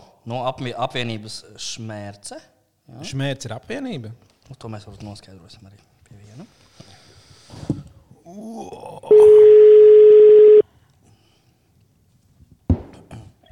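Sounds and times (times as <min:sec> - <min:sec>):
speech: 0:00.2 - 0:06.9, 0:08.3 - 0:09.6
telephone ringing tone while placing a call: 0:09.1 - 0:10.6.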